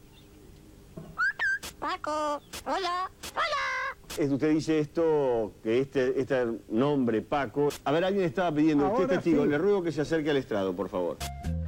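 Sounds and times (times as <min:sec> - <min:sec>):
20-year-old parrot imitating a human voice: 0:01.8 - 0:04.0
speech: 0:01.8 - 0:11.3.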